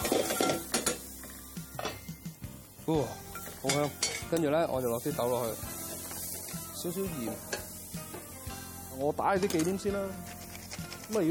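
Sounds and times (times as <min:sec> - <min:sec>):
metal lid lifted off a pan of fried rice: 0:00.0 - 0:01.0, 0:03.4 - 0:04.4
speech: 0:02.9 - 0:05.7, 0:06.8 - 0:07.5, 0:09.0 - 0:10.3, 0:11.1 - 0:11.3.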